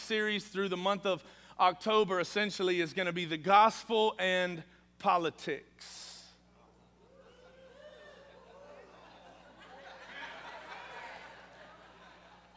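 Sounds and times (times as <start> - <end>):
speech: 0.1 - 6.0
audience oohing and aahing in nervous anticipation: 6.9 - 12.5
scattered chuckles: 6.9 - 12.5.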